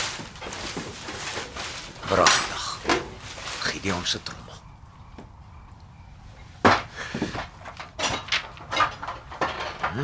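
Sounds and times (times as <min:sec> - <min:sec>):
things in cupboard clattering and rustling as they are rummaged through: 0:00.0 - 0:04.1, 0:06.6 - 0:10.0
speech: 0:02.1 - 0:02.4, 0:03.8 - 0:04.5.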